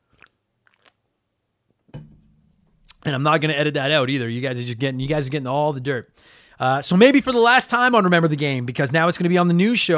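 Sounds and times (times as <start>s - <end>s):
soft wet mouth clicks from sipping a cold drink: 0.0s - 1.0s
speech: 3.1s - 9.9s.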